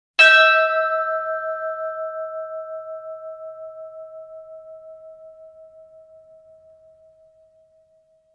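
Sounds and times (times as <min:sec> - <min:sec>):
single church bell ringing in a bell tower: 0:00.2 - 0:03.7.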